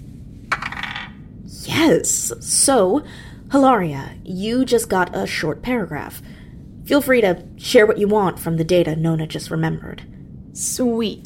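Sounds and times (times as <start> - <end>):
low hum: 0.0 - 11.2
dice rolled clattering onto a hard surface: 0.5 - 1.1
speech: 1.5 - 11.2.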